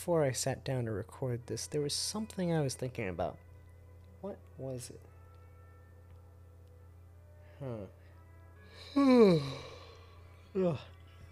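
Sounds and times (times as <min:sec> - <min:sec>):
speech: 0:00.0 - 0:03.5, 0:04.2 - 0:05.1, 0:07.6 - 0:08.0, 0:08.8 - 0:09.7, 0:10.6 - 0:11.0
person yawning with a breathy falling pitch: 0:08.7 - 0:10.9
short voiced groans or sighs: 0:08.8 - 0:10.9.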